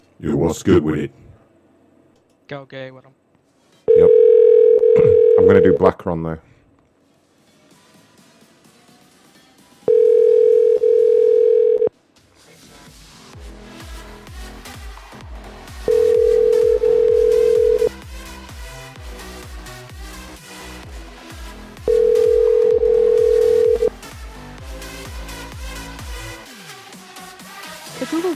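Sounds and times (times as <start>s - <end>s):
speech: 0.2s - 1.3s, 2.5s - 3.2s, 5.4s - 6.5s
ringback tone beeps of an outgoing phone call: 3.9s - 5.8s, 9.9s - 11.9s, 15.9s - 17.9s, 21.9s - 23.9s
rhythmic music: 12.6s - 28.2s.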